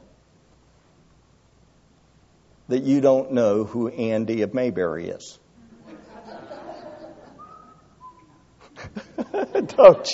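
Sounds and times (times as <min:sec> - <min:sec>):
speech: 0:02.7 - 0:05.4, 0:09.8 - 0:10.1
audience chuckling and laughing: 0:05.7 - 0:07.8, 0:08.6 - 0:10.1
person whistling a TV theme song: 0:07.4 - 0:08.4.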